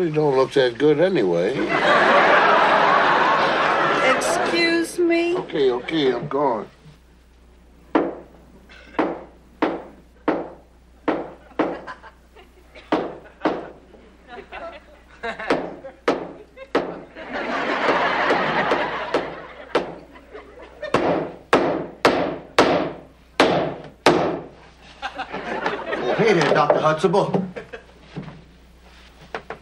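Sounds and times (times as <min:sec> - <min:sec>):
speech: 0:00.0 - 0:02.4, 0:04.4 - 0:06.8, 0:27.0 - 0:27.4
laughter: 0:01.5 - 0:06.3, 0:11.4 - 0:21.0, 0:24.6 - 0:28.0
hammer pounding wood: 0:07.9 - 0:08.3, 0:09.0 - 0:11.9, 0:12.8 - 0:13.8, 0:15.5 - 0:17.0, 0:17.9 - 0:20.0, 0:20.9 - 0:24.6.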